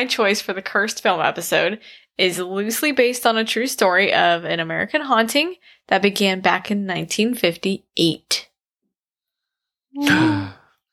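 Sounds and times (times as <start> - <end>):
speech: 0.0 - 8.5, 10.0 - 10.6
breathy voiced gasp: 10.0 - 10.8.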